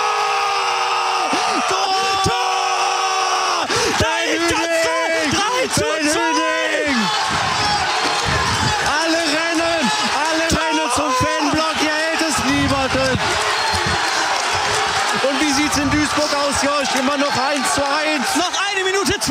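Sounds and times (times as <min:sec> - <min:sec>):
large stadium crowd of football fans cheering after a goal: 0:00.0 - 0:19.2
football fans shouting and chanting together: 0:03.4 - 0:18.6.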